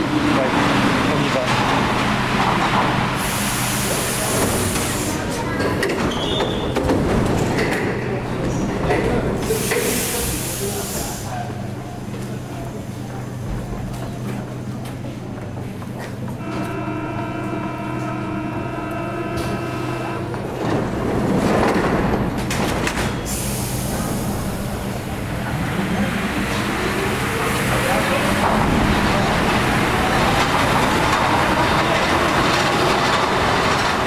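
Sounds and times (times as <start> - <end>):
metro train rumbling into a station: 0.0 - 34.0
platform noise: 16.4 - 20.9.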